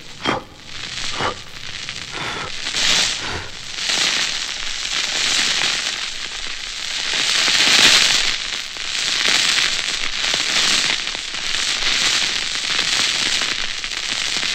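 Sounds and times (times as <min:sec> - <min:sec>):
dying fire crackling and popping: 0:00.0 - 0:14.5
roaring hiss of flames as air is blown into them: 0:00.0 - 0:14.5.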